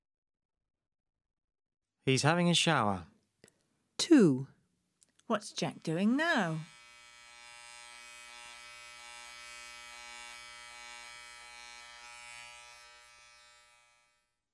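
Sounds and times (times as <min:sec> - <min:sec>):
speech: 0:02.0 - 0:03.1, 0:04.0 - 0:04.5, 0:05.3 - 0:06.7
electric razor buzzing as a man shaves: 0:05.9 - 0:14.4.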